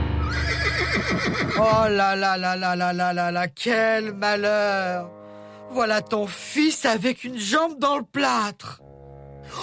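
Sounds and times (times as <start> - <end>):
agitated horse neighing and whinnying: 0.2 - 1.9
speech: 1.0 - 8.9.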